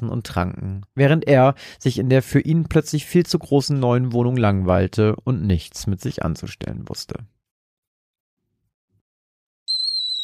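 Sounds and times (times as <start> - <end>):
speech: 0.0 - 7.4
whistling kettle on a gas stove: 9.7 - 10.2.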